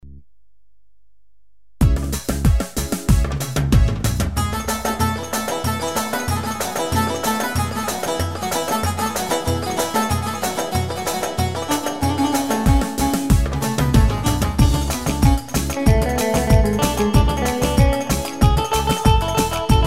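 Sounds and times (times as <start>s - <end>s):
keyboard rhythm: 1.8s - 19.8s.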